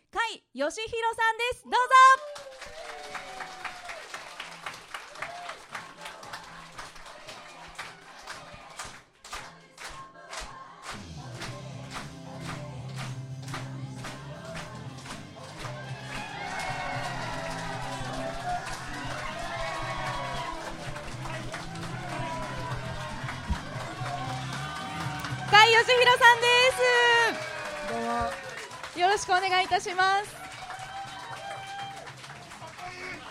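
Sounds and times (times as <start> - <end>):
speech: 0.3 - 2.3, 29.3 - 30.4
crowd cheering and shouting: 2.0 - 8.9, 14.0 - 33.3
large crowd applauding: 2.2 - 33.3.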